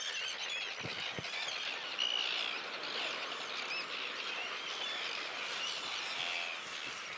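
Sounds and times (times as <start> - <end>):
chorus of terns calling at a breeding colony on an old pontoon: 0.0 - 7.1.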